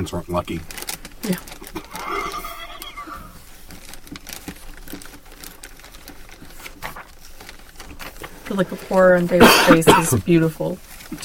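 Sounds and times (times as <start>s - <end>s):
speech: 0.0s - 1.8s, 8.5s - 11.2s
clattering and rustling noises: 0.6s - 11.2s
horse whinnying: 1.7s - 3.5s.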